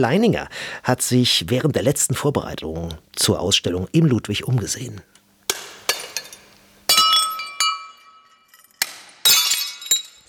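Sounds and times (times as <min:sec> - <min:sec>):
speech: 0:00.0 - 0:05.1
hammer smashing porcelain cups and plates: 0:05.5 - 0:10.2.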